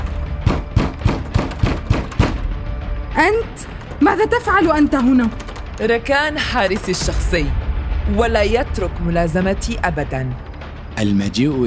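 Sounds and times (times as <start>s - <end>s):
heavy rapid pounding on a door: 0.3s - 2.6s
speech: 3.2s - 10.4s, 11.0s - 11.6s.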